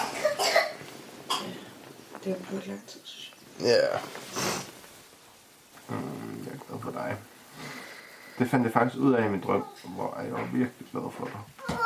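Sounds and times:
person coughing: 0.0s - 1.6s
speech: 2.2s - 4.5s, 6.8s - 7.7s, 8.4s - 11.6s.

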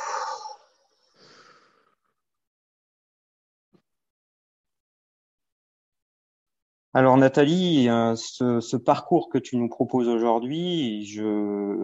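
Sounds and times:
deep breath in and out: 0.0s - 2.2s
speech: 6.9s - 11.8s.

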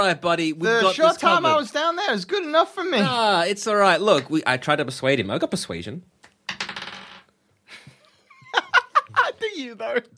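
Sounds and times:
speech: 0.0s - 6.2s, 9.6s - 10.1s
dice clattering across a hard tabletop: 6.5s - 7.3s
laughter: 7.7s - 10.1s.

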